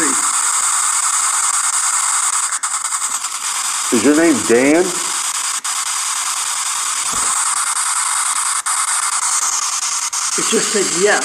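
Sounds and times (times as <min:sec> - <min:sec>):
radio static from a scanning radio box: 0:00.0 - 0:11.2
speech: 0:03.9 - 0:05.1, 0:10.5 - 0:11.2.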